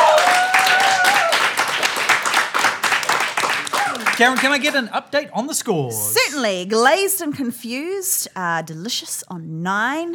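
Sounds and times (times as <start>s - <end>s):
round of applause from a small group: 0.0s - 4.9s
speech: 4.2s - 10.1s.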